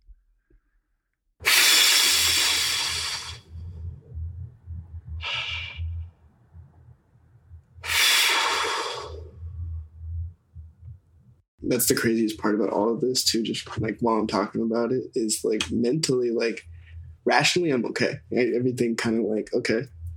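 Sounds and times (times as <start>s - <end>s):
deep breaths: 1.4s - 6.7s, 7.8s - 9.5s
steady low hum: 1.9s - 20.1s
speech: 11.7s - 20.0s.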